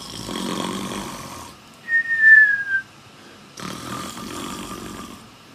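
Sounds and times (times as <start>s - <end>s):
person imitating snoring: 0.0s - 1.6s, 3.6s - 5.4s.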